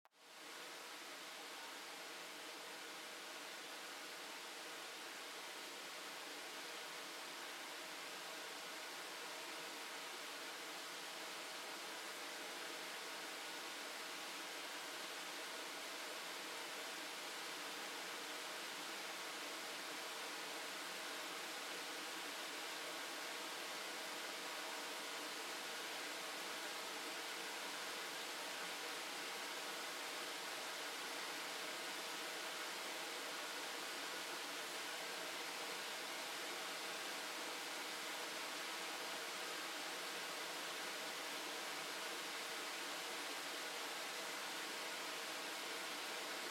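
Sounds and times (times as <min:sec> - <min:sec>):
waterfall: 0:00.2 - 0:46.4.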